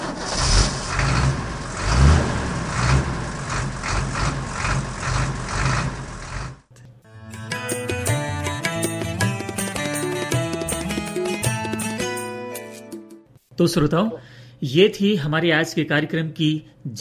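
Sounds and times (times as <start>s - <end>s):
truck engine rumbling loudly: 0.0s - 6.7s
melodic music piece: 7.1s - 13.3s
speech: 13.6s - 16.9s.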